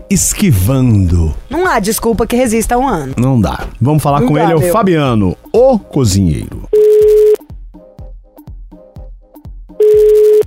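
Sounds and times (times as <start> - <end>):
speech: 0.1 - 6.7
telephone ring tones on a call line: 6.8 - 7.4, 9.8 - 10.4.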